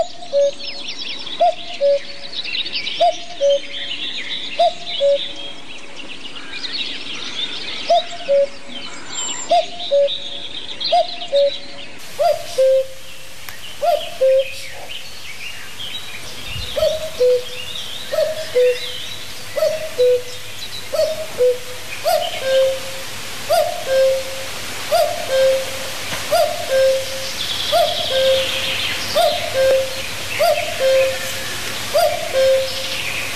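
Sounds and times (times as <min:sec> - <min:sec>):
faint chirping of other birds: 0:00.0 - 0:33.3
common cuckoo calling its two-note cuck-oo: 0:01.4 - 0:02.2, 0:04.6 - 0:05.5, 0:07.9 - 0:08.8, 0:09.4 - 0:33.3.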